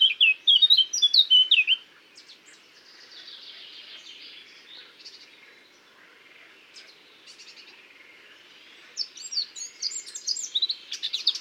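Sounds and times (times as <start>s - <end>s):
Eurasian blackcap Sylvia atricapilla song: 0.0s - 5.4s, 9.0s - 11.3s.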